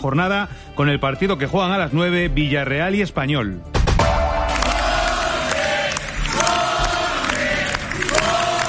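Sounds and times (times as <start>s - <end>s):
speech: 0.0s - 3.8s
large crowd cheering and clapping for an arriving politician: 4.0s - 8.6s.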